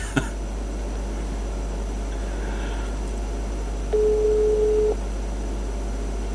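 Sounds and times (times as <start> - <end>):
laughter: 0.0 - 0.4
low hum and hiss: 0.0 - 6.3
steady telephone busy tone: 3.9 - 5.0.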